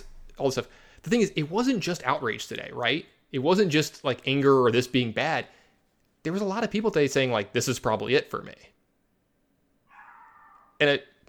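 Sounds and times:
speech: 0.4s - 5.6s, 6.2s - 8.8s, 10.8s - 11.1s
dog whining: 9.9s - 10.8s.

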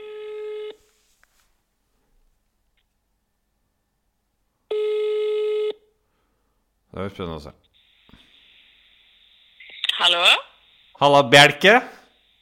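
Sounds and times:
ringback tones from an outgoing phone call: 0.0s - 0.8s, 4.7s - 5.8s
speech: 7.0s - 7.7s, 10.0s - 12.0s.

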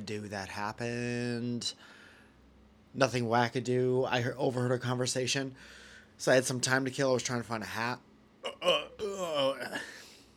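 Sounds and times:
speech: 0.0s - 2.0s, 2.9s - 10.0s
person burping deliberately: 8.4s - 10.0s.

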